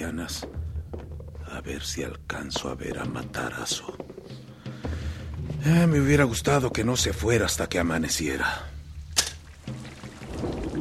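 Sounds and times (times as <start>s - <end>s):
speech: 0.1s - 4.1s, 5.6s - 8.7s
steady rain falling at night: 9.5s - 10.8s.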